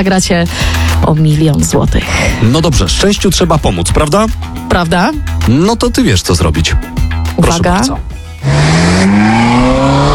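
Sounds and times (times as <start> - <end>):
speech: 0.0 - 10.1
car engine revving hard: 8.2 - 10.1.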